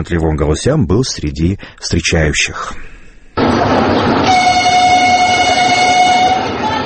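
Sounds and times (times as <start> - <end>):
speech: 0.0 - 2.9
passenger train arriving: 3.4 - 6.8.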